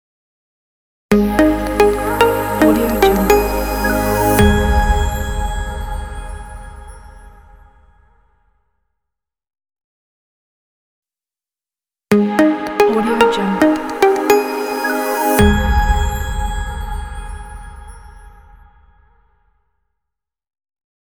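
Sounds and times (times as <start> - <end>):
technology podcast logo music: 1.1 - 6.2, 12.1 - 17.1.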